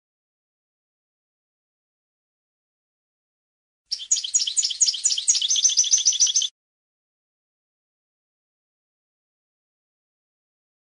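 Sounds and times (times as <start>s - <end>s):
European goldfinch twittering song: 3.9s - 6.5s.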